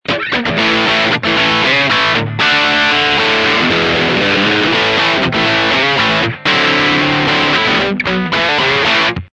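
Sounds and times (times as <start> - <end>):
dirty bridge humbucker electric guitar through steel twin amplifier: 0.0 - 9.3.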